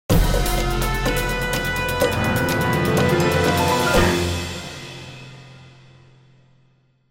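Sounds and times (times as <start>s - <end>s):
music: 0.1s - 7.0s.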